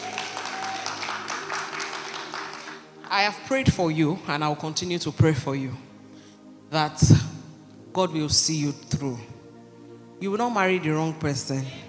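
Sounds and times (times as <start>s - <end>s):
crowd applauding: 0.0s - 3.1s
speech: 3.1s - 5.9s, 6.7s - 7.3s, 8.0s - 9.4s, 10.2s - 11.8s.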